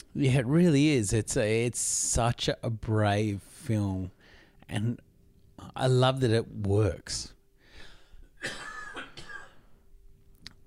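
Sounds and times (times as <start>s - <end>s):
speech: 0.2s - 7.4s, 8.4s - 8.7s
person clearing throat: 8.4s - 9.7s
raspy coughs: 8.4s - 9.7s.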